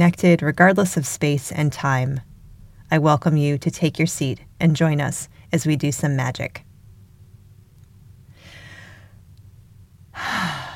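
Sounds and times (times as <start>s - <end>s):
speech: 0.0s - 2.3s, 2.9s - 6.7s
long deep breath during a guided relaxation circle: 8.3s - 9.2s, 10.2s - 10.7s.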